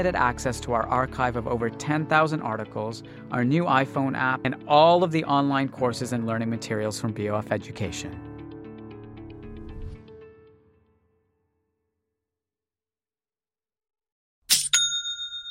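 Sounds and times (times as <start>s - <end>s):
speech: 0.0s - 8.3s
soft music: 0.0s - 11.0s.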